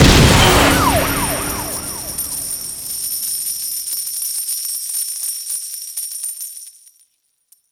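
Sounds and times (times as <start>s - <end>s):
big win jingle: 0.0s - 3.5s.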